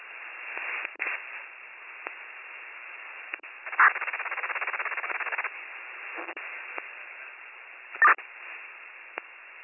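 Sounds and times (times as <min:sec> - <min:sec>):
radio static hiss: 0:00.0 - 0:09.6
buzzing pulsing garbled radio transmission: 0:03.6 - 0:05.5, 0:06.1 - 0:06.9, 0:08.0 - 0:08.2.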